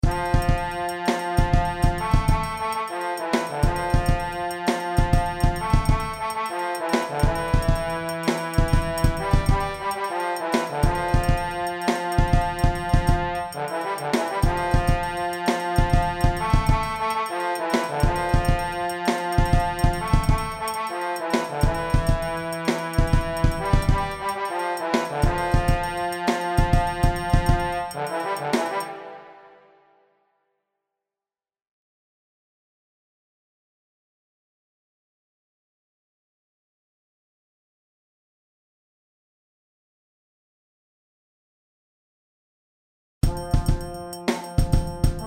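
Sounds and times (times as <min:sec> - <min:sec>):
trombone percussive hits: 0:00.0 - 0:29.2, 0:43.2 - 0:45.2.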